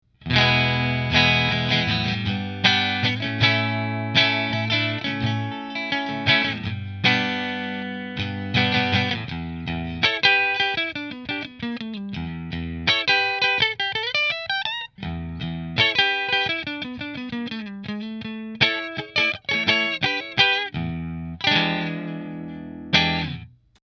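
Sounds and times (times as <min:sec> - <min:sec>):
Fender electric guitar on pickup position 3: 0:00.2 - 0:23.8.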